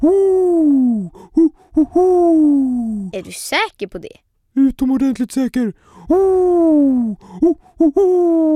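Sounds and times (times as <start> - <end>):
speech: 0.0 - 0.5, 3.2 - 8.5
person imitating an owl hoot: 0.0 - 3.2, 6.0 - 8.5.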